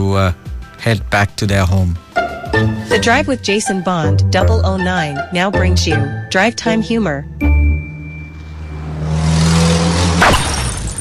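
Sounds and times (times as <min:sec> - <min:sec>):
speech: 0:00.0 - 0:07.4
car engine droning: 0:06.7 - 0:10.9
car crash: 0:08.3 - 0:10.9
debris noise: 0:10.1 - 0:10.9
glass shattering: 0:10.1 - 0:10.9.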